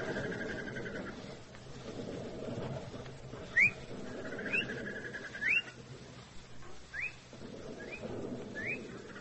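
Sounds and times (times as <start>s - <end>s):
low rumble: 0.0s - 9.2s
bird mating call of rising whistled chirps: 3.5s - 5.8s, 6.9s - 9.2s.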